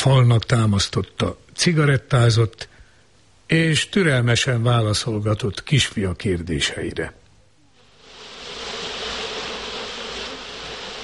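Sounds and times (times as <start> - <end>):
speech: 0.0 - 2.7, 3.5 - 7.2
swarm of many bees buzzing: 7.8 - 11.0.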